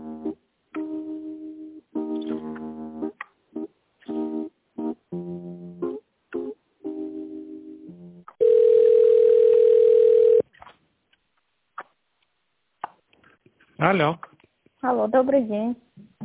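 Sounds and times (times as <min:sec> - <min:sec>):
telephone ringing tone as a call is put through: 0:08.4 - 0:10.4
speech: 0:13.8 - 0:15.8.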